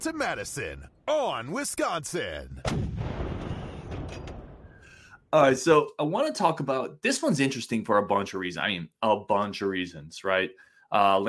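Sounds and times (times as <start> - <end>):
speech: 0.0 - 3.2, 5.3 - 11.2
booming cannon fire: 2.6 - 4.8.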